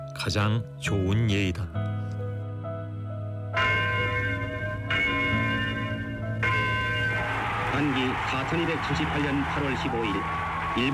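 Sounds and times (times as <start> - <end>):
speech: 0.2 - 2.2, 7.8 - 10.9
large church bell tolling: 3.5 - 10.9.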